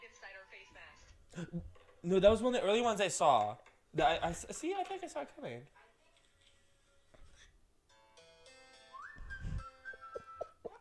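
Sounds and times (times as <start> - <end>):
speech: 1.4 - 5.8
person attempting to whistle: 8.9 - 10.7
rush of breathy air: 9.2 - 9.7.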